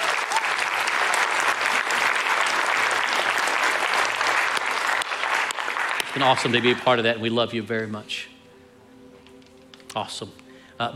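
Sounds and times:
large group applauding: 0:00.0 - 0:07.1
speech: 0:06.2 - 0:08.3, 0:10.0 - 0:10.9.

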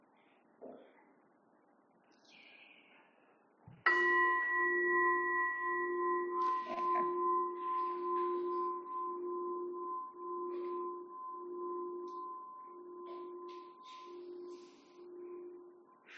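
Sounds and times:
meditation bell struck to begin a meditation session: 0:03.9 - 0:16.1.

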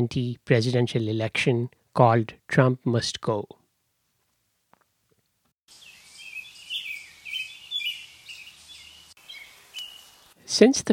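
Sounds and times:
speech: 0:00.0 - 0:03.6, 0:10.5 - 0:10.9
dense outdoor birdsong chorus: 0:05.7 - 0:10.4
ambient hiss: 0:05.7 - 0:10.9.

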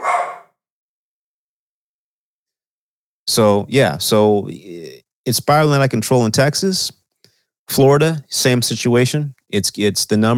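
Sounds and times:
dog barking: 0:00.0 - 0:00.6
speech: 0:03.3 - 0:07.0, 0:07.7 - 0:10.3.

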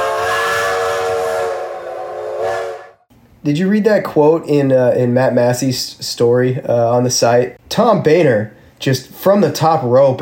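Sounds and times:
steam train whistle blowing: 0:00.0 - 0:03.1
speech: 0:03.4 - 0:10.1.

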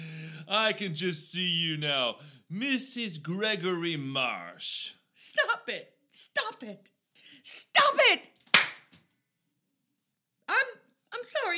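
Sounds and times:
speech: 0:00.5 - 0:08.3, 0:10.5 - 0:11.5
hand slapping across the face: 0:08.5 - 0:09.0.

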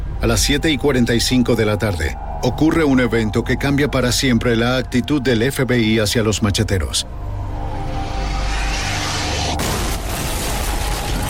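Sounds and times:
loud continuous low rumble: 0:00.0 - 0:11.2
speech: 0:00.2 - 0:07.3
sharp blast: 0:08.3 - 0:11.2
large bomb explosion inside an office building: 0:09.6 - 0:11.2.

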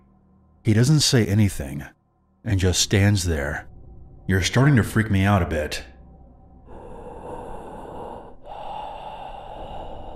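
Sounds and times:
speech: 0:00.7 - 0:03.7, 0:04.3 - 0:05.9
heavy raspy breathing: 0:06.4 - 0:10.1.

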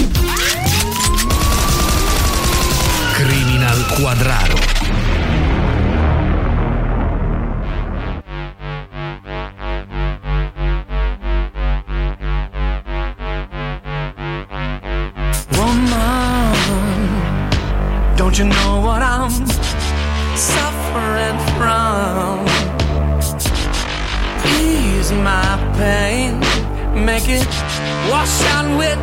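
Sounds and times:
heavy rumbling background: 0:00.0 - 0:29.0
rapid gunfire sound effect: 0:00.2 - 0:05.0
police siren wailing: 0:00.3 - 0:05.0
gunshots: 0:00.3 - 0:05.2
explosion sound effect: 0:01.2 - 0:08.2.

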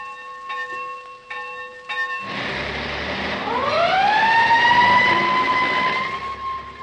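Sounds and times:
school bell ringing: 0:00.0 - 0:03.5
fire engine siren wailing: 0:02.2 - 0:06.8.

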